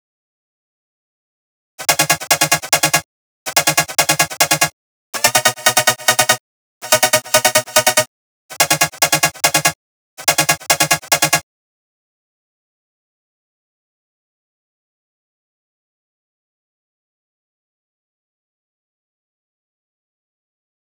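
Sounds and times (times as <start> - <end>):
melody loop chords in D sharp minor: 1.8 - 11.4.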